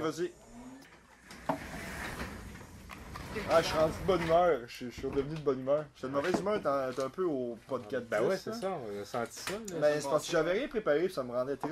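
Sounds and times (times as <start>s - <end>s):
speech: 0.0s - 0.5s, 3.4s - 11.7s
low room noise: 0.0s - 11.7s
door shutting: 0.5s - 4.4s.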